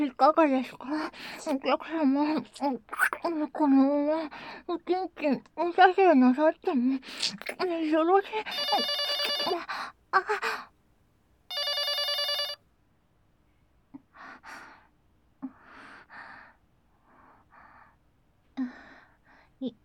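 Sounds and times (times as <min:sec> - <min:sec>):
speech: 0:00.0 - 0:10.7, 0:19.6 - 0:19.8
telephone ringing in a bright buzzy electronic burst: 0:08.5 - 0:09.6, 0:11.5 - 0:12.6.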